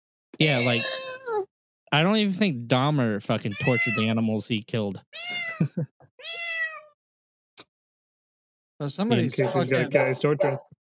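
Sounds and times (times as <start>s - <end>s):
speech: 0.4s - 1.0s, 1.9s - 6.4s, 8.8s - 10.8s
cat yowling: 0.6s - 1.4s, 3.6s - 4.1s, 5.2s - 5.6s, 6.2s - 7.0s
laughter: 5.3s - 5.9s.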